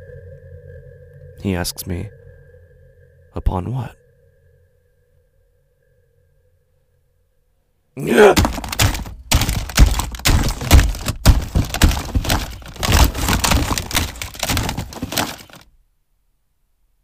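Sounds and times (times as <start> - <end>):
speech: 1.4 - 2.2, 3.4 - 4.0, 8.0 - 8.7
phone being smashed to pieces: 8.1 - 15.6.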